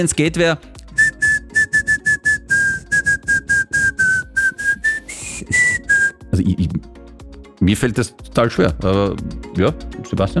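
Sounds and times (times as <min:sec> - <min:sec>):
speech: 0:00.0 - 0:00.8, 0:06.4 - 0:06.9, 0:07.6 - 0:10.3
person whistling a catchy pop-style melody: 0:00.9 - 0:06.3.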